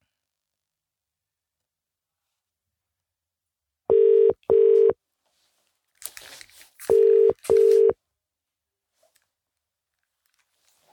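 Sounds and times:
outgoing phone call ringing tones: 3.9 - 5.0, 6.9 - 8.0
soft rustle: 5.2 - 7.8, 8.9 - 10.9.

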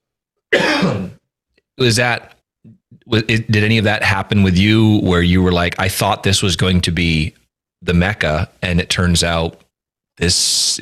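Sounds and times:
loud coughs: 0.5 - 1.2
speech: 1.8 - 9.6, 10.2 - 10.7.

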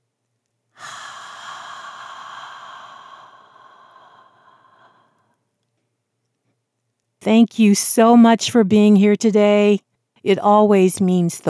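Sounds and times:
deep breath: 0.8 - 5.4
speech: 7.2 - 11.4.

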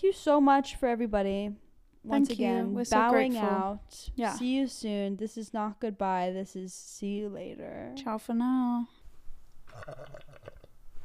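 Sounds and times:
speech: 0.0 - 9.0, 9.8 - 10.5
guttural gurgling reverse burp: 9.7 - 10.8.

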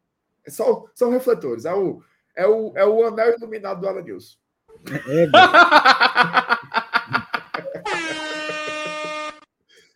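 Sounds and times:
speech: 0.5 - 6.5
laughter: 4.8 - 9.4
horn blast: 7.8 - 9.5.

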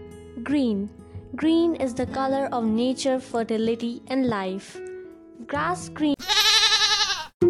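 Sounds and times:
speech: 0.5 - 4.9, 5.5 - 6.2
goat bleating: 6.2 - 7.4.

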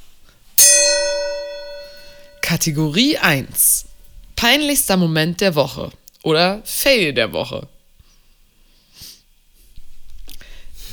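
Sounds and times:
single gong strike with bright metallic overtones: 0.6 - 2.7
speech: 2.5 - 7.7.

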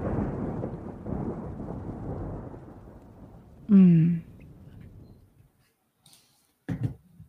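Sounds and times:
low continuous thunder rumbling: 0.0 - 5.4
faint hiss: 3.2 - 6.8
speech: 3.7 - 4.2.

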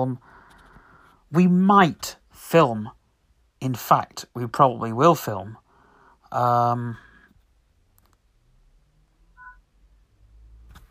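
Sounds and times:
speech: 0.0 - 0.4, 1.3 - 3.0, 3.6 - 5.6, 6.3 - 7.0
loud bright electronic phone alert tone: 9.4 - 9.6
faint short beep: 9.4 - 9.7.

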